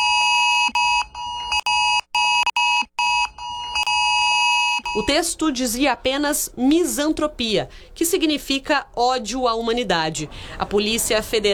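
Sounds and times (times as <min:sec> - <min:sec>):
cellphone extreme emergency alert tone: 0:00.0 - 0:05.3
speech: 0:05.0 - 0:11.5.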